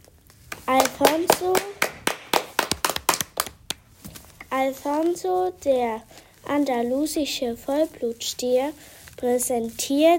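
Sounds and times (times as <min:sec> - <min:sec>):
audience hand claps: 0:00.5 - 0:03.9
speech: 0:00.7 - 0:01.9, 0:04.5 - 0:10.1.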